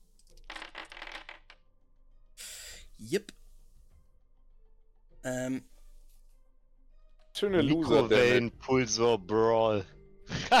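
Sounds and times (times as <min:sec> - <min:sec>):
dice rolled during a tabletop role-playing game: 0:00.0 - 0:01.6
speech: 0:03.0 - 0:03.4, 0:05.2 - 0:05.7, 0:07.4 - 0:10.5.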